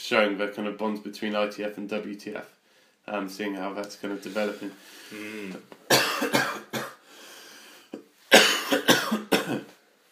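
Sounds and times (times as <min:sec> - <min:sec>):
speech: 0:00.1 - 0:06.6
quiet breath: 0:02.6 - 0:03.0, 0:04.4 - 0:05.7, 0:07.0 - 0:08.1
person coughing in a loud coughing fit: 0:05.2 - 0:07.0, 0:08.3 - 0:09.7.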